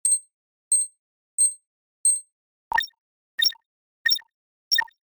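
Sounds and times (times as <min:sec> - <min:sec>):
data processing sound effect: 0:02.7 - 0:04.9.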